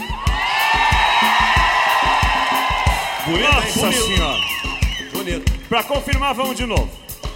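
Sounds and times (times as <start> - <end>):
large live crowd roaring and shouting at a DVD recording: 0.0 - 5.4
steady thumping beat: 0.0 - 7.3
speech: 3.3 - 4.6, 5.3 - 7.0.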